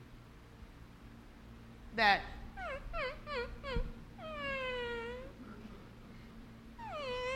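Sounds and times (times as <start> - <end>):
speech: 2.0 - 3.9
dog whimpering: 2.4 - 5.5, 6.8 - 7.3.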